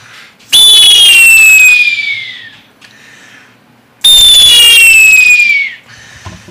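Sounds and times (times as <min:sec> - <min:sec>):
shrill blasts of handmade Oaxacan whistles imitating bird calls: 0:00.5 - 0:02.6, 0:04.0 - 0:05.9.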